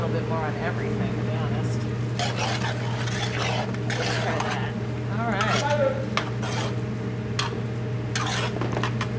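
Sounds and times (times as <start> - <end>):
speech: 0.2 - 1.2
utensil scraping and clinking in a pan stirring vegetables and garlic in butter: 2.1 - 9.1.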